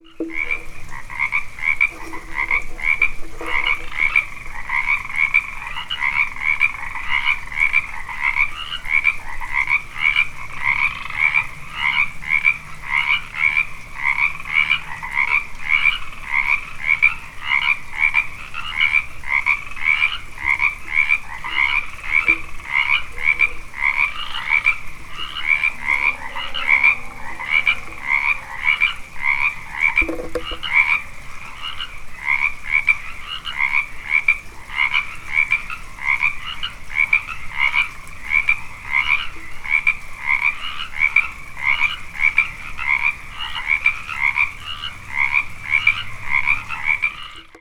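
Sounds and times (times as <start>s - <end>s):
frogs: 0.0s - 47.6s.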